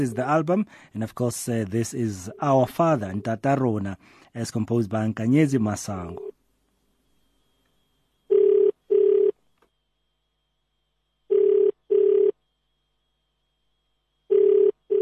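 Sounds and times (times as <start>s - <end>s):
speech: 0.0s - 6.3s
telephone ringback tone of a failed call: 8.3s - 9.4s, 11.3s - 12.4s, 14.3s - 15.0s.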